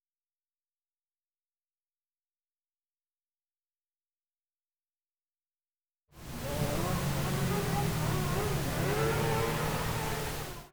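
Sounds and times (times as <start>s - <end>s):
high revving pink noise: 6.2s - 10.7s.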